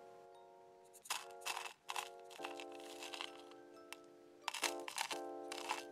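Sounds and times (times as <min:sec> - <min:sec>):
ground coffee spooned into a paper filter: 0:01.0 - 0:03.5, 0:04.5 - 0:05.8.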